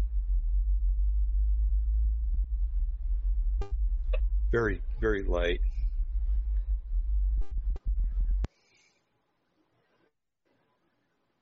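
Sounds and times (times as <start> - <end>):
deep low-frequency droning hum: 0.0 - 8.5
speech: 4.5 - 5.7.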